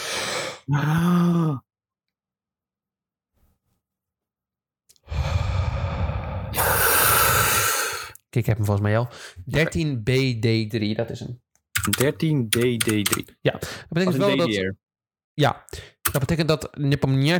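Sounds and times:
short voiced sigh-like sound: 0.6 - 1.7, 5.0 - 7.9
speech: 0.7 - 1.7, 8.4 - 14.8, 15.4 - 17.3
deep breath drawn in: 5.0 - 8.2.

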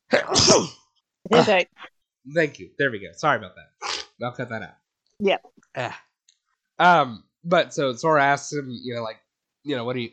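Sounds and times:
loud sneeze: 0.1 - 1.4
speech: 0.3 - 6.1, 6.8 - 10.1.

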